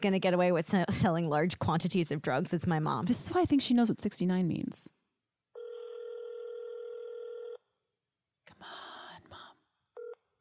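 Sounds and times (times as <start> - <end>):
speech: 0.0 - 5.0
telephone line tone from a phone call being placed: 5.6 - 7.6.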